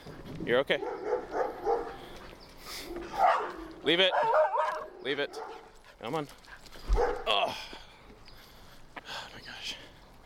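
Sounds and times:
outdoor noise: 0:00.0 - 0:10.2
speech: 0:00.4 - 0:01.4, 0:02.9 - 0:07.8
dog barking: 0:00.8 - 0:02.0, 0:02.9 - 0:05.7, 0:06.9 - 0:07.3.

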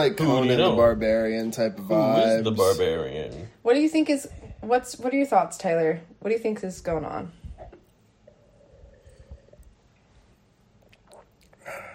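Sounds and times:
speech: 0:00.0 - 0:07.4
person sipping a drink: 0:07.5 - 0:11.9.

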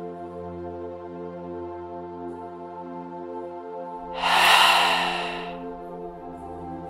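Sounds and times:
deep breath in through nose and out through mouth: 0:04.2 - 0:05.6.

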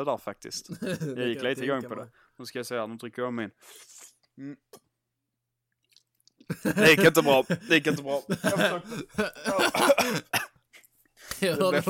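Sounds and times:
speech: 0:00.0 - 0:04.8, 0:06.5 - 0:10.4, 0:11.4 - 0:11.8
laughter: 0:00.7 - 0:02.0, 0:06.5 - 0:10.4, 0:11.3 - 0:11.8
harsh coughs and throat-clearing bursts: 0:08.2 - 0:10.6.

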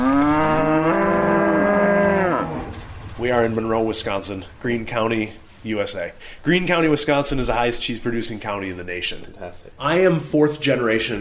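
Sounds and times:
brown Swiss cow mooing: 0:00.0 - 0:02.8
speech: 0:03.3 - 0:11.2.

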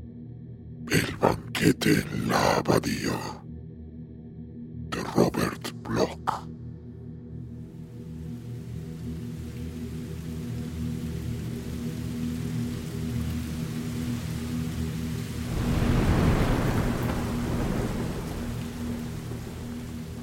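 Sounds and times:
heavy rain hissing: 0:00.9 - 0:03.4, 0:05.0 - 0:06.4, 0:08.1 - 0:20.2
speech: 0:00.9 - 0:03.4, 0:05.2 - 0:06.6
steady storm rumble: 0:09.2 - 0:20.2
loud thunderclap: 0:15.5 - 0:20.2.

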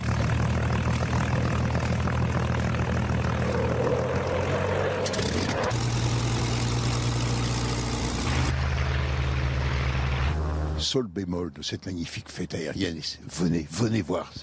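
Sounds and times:
Spitfire propeller warplane engine flying overhead at an air show: 0:00.0 - 0:10.8
speech: 0:10.9 - 0:14.4.

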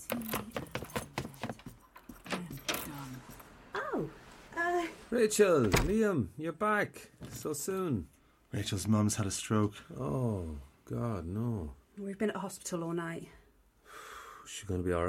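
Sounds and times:
keys jangling: 0:00.1 - 0:03.5
speech: 0:05.2 - 0:13.4, 0:14.5 - 0:15.0.

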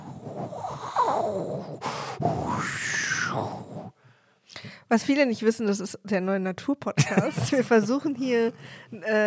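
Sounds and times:
voice imitating howling hurricane storm wind with breathy whooshes and groans: 0:00.0 - 0:04.0
speech: 0:00.4 - 0:04.0, 0:04.9 - 0:09.2.

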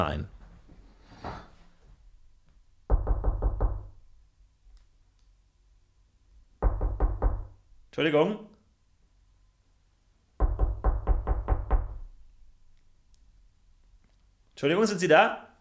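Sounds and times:
speech: 0:00.0 - 0:00.4, 0:08.0 - 0:08.5, 0:14.6 - 0:15.4
firm knocking on a door: 0:02.9 - 0:04.0, 0:06.6 - 0:07.6, 0:10.4 - 0:12.2.

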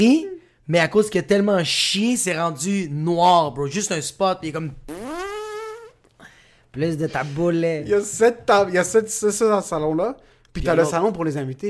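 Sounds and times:
speech: 0:00.0 - 0:05.0, 0:06.8 - 0:11.6
person blowing a loud buzzy mouth fart: 0:04.8 - 0:06.1.

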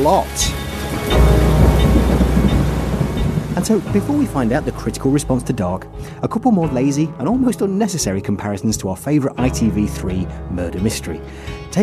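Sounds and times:
speech: 0:00.0 - 0:01.4, 0:03.6 - 0:11.8
thunder rumbling: 0:00.0 - 0:06.0
heavy rain pouring down: 0:00.0 - 0:06.1.

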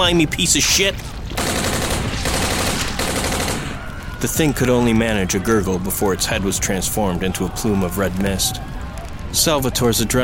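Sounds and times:
speech: 0:00.0 - 0:01.4, 0:04.2 - 0:10.2
automatic rifle gunfire sprayed into a crowd in a science-fiction battle: 0:01.4 - 0:03.9.

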